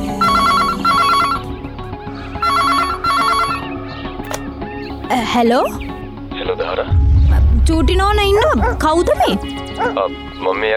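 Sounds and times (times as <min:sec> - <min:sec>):
landline telephone ringing at a house: 0:00.2 - 0:01.4, 0:02.4 - 0:03.7
speech: 0:05.4 - 0:07.0, 0:07.7 - 0:10.7.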